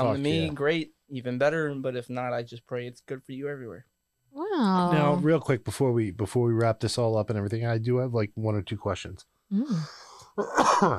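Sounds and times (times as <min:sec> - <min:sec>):
person humming: 0:00.0 - 0:00.6, 0:04.6 - 0:05.5
speech: 0:00.0 - 0:03.9, 0:04.5 - 0:10.9
harsh cough: 0:10.4 - 0:10.9.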